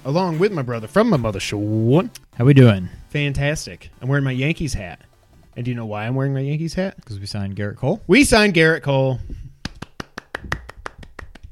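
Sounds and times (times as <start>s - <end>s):
speech: 0.0s - 9.5s
person clapping hands while holding a pencil: 9.6s - 11.5s.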